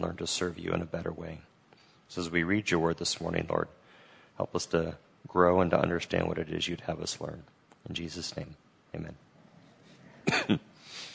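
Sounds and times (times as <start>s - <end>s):
speech: 0.0s - 1.5s, 2.1s - 3.8s, 4.4s - 9.3s, 10.3s - 11.1s
quiet room hum: 0.0s - 11.1s
person coughing: 10.2s - 10.8s.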